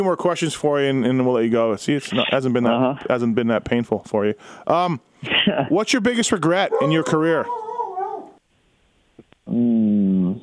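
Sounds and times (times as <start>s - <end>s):
speech: 0.0s - 7.6s, 9.5s - 10.4s
dog barking: 6.7s - 8.4s.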